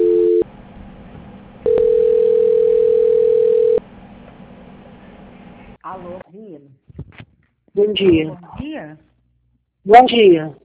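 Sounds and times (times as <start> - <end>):
telephone line tones during a call transfer: 0.0 - 0.4, 1.6 - 3.8
speech: 7.8 - 9.0, 9.8 - 10.6.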